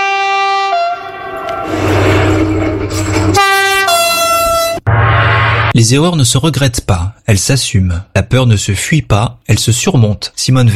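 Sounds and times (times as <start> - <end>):
TGV high-speed train two-tone horn blasts: 0.0 - 1.8, 3.3 - 4.9
TGV high-speed train rushing roar and low rumble: 0.0 - 5.8
speech: 5.8 - 10.7.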